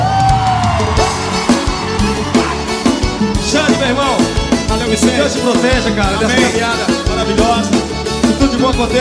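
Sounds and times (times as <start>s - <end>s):
audience cheering and whooping: 0.0s - 5.8s
speech: 4.9s - 9.0s.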